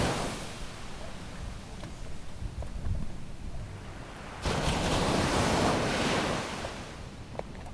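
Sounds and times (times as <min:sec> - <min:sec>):
sea waves crashing on rocks: 0:00.0 - 0:01.2, 0:03.8 - 0:07.1
wind noise: 0:00.0 - 0:07.7.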